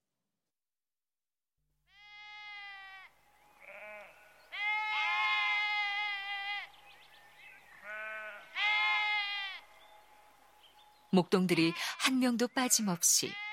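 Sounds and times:
sheep bleating: 1.9 - 6.8, 7.8 - 9.8, 11.6 - 13.5
speech: 11.2 - 13.4.

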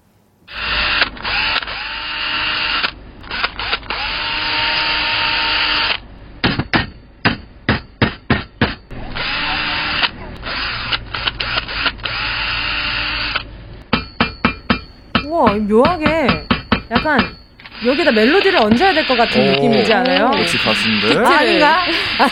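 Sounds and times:
electric power drill whirring at interior construction site: 0.5 - 6.0, 9.2 - 13.5, 17.6 - 19.3
hammer strikes at interior construction site: 6.4 - 8.9, 13.9 - 17.5
speech: 17.1 - 22.2
laughter: 19.2 - 22.2.

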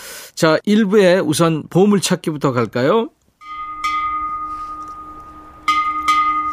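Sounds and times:
speech: 0.4 - 3.2
school bell ringing: 3.4 - 6.5.

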